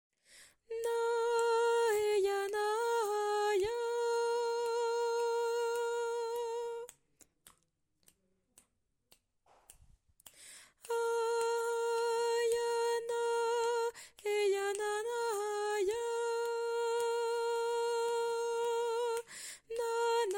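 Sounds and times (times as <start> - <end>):
tenor singing: 0.7 - 7.0, 10.8 - 20.3.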